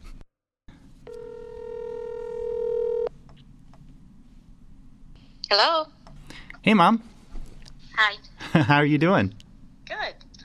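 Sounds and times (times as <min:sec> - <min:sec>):
telephone electronic ring tone: 0:01.1 - 0:03.1
speech: 0:05.5 - 0:06.0, 0:06.6 - 0:07.1, 0:08.0 - 0:09.4.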